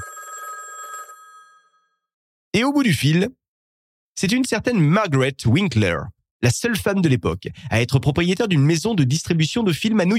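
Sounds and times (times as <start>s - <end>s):
telephone bell ringing: 0.0s - 2.1s
speech: 2.6s - 3.4s, 4.2s - 10.1s.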